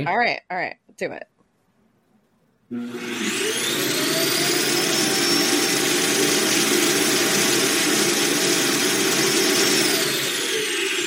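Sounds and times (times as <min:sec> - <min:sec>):
speech: 0:00.0 - 0:01.3, 0:02.7 - 0:03.7
robot vacuum base station emptying the bin with whining suction: 0:02.7 - 0:11.0.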